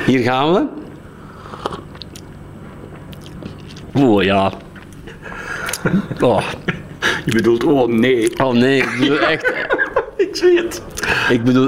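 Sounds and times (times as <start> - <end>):
speech: 0.1 - 0.8, 4.0 - 11.6
slurping hot black coffee through the lips: 1.3 - 2.0
laughter: 5.0 - 7.3, 8.6 - 11.5.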